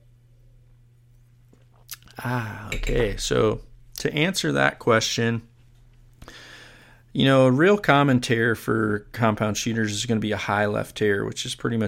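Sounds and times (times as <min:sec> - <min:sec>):
steady low electrical hum: 0:00.0 - 0:11.8
person sipping a drink: 0:01.5 - 0:02.8
speech: 0:01.9 - 0:05.5, 0:07.1 - 0:11.8.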